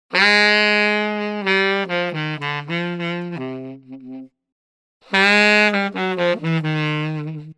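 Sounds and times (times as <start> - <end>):
saxophone: 0.1 - 7.5.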